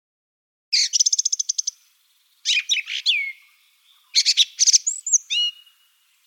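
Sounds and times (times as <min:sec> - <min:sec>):
song thrush song: 0:00.7 - 0:06.2.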